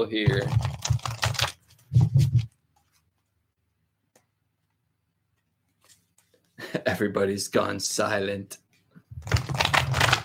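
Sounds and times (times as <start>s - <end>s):
speech: 0.0s - 0.8s, 6.8s - 8.6s
deck of oracle cards being shuffled: 0.2s - 3.0s, 9.2s - 10.2s.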